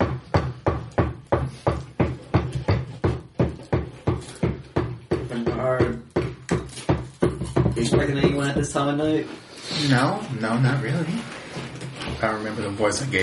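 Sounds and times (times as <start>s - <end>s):
steady knocking at a door: 0.0s - 9.1s
speech: 8.1s - 11.3s, 12.2s - 13.2s.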